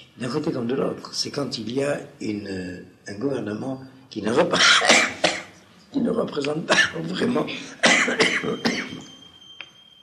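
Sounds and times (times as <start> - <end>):
speech: 0.2 - 5.2, 6.0 - 9.2
coughing: 4.3 - 5.6, 6.6 - 9.2.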